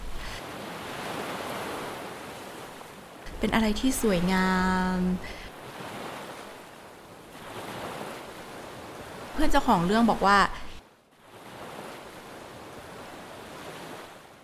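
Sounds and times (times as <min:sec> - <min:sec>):
ocean surf breaking on the shore: 0:00.0 - 0:14.4
speech: 0:03.4 - 0:05.4, 0:09.4 - 0:10.7.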